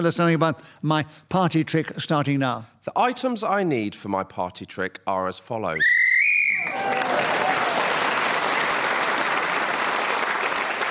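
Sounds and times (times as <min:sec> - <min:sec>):
speech: 0:00.0 - 0:07.4
whistle blast: 0:05.8 - 0:06.8
crowd applause: 0:06.6 - 0:10.8.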